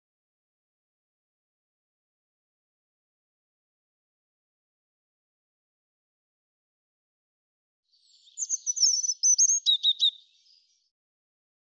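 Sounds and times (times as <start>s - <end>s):
European robin song: 7.9s - 10.9s.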